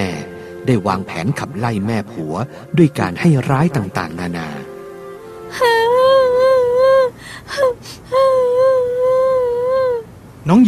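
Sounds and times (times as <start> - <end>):
speech: 0.2 - 4.6, 5.5 - 5.8, 10.4 - 10.6
woman crying in high-pitched wails: 5.5 - 10.1.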